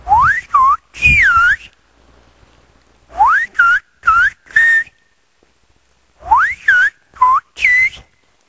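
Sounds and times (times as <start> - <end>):
whistled language phrases: 0.0 - 1.8, 3.1 - 5.0, 6.2 - 8.2.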